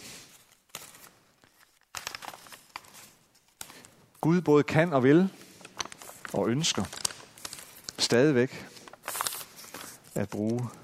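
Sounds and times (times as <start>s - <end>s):
fine white glossy sheet of paper crinkling and crumpling: 0.2s - 3.9s, 5.3s - 10.8s
speech: 4.2s - 5.4s, 6.3s - 7.0s, 8.1s - 8.7s, 10.2s - 10.8s.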